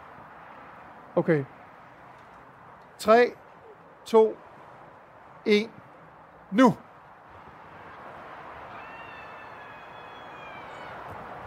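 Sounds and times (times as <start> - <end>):
speech: 1.2 - 1.6, 3.0 - 3.4, 4.0 - 4.4, 5.4 - 5.8, 6.5 - 6.8
wind roaring: 2.6 - 11.4
woman screaming against the wind: 8.7 - 11.1.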